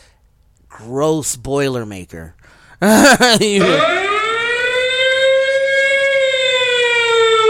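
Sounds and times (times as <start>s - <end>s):
speech: 0.8s - 4.1s
laughter: 2.8s - 3.9s
siren wailing: 3.6s - 7.4s.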